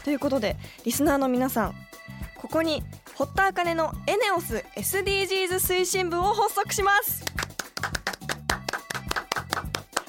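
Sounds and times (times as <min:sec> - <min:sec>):
speech: 0:00.0 - 0:07.3
rhythmic hand claps: 0:07.1 - 0:10.0.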